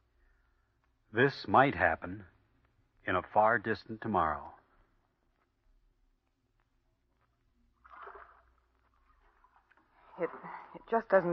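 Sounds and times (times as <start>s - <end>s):
speech: 1.2s - 2.3s, 3.1s - 4.6s, 10.2s - 11.3s
low steady rumble of lapping water: 7.6s - 11.3s
oars rowing a boat through water: 7.8s - 10.8s.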